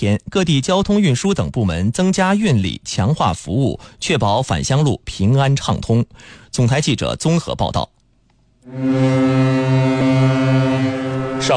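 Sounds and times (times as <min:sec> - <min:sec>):
speech: 0:00.0 - 0:08.0, 0:08.7 - 0:11.5
30,000-ton ro-ro passenger ferry horn blast on departure from Dalian: 0:08.7 - 0:11.5.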